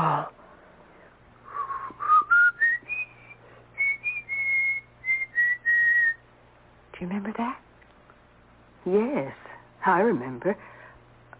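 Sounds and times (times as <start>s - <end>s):
faint low hum: 0.0s - 11.3s
person whistling an old-fashioned melody: 1.5s - 6.2s
speech: 7.0s - 7.6s, 8.8s - 10.7s.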